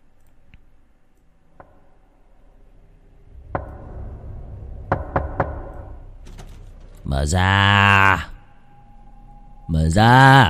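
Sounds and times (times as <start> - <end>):
steady low noise: 0.0 - 10.4
knocking on a wooden door at night: 4.9 - 5.7
speech: 7.1 - 8.3, 9.9 - 10.4.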